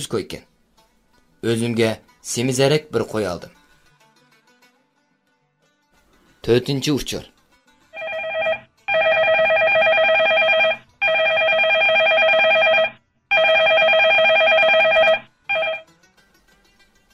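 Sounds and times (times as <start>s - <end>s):
speech: 0.0s - 0.5s, 1.4s - 3.6s, 6.4s - 7.3s
telephone ringing with bright warbling electronic tones: 8.0s - 15.9s.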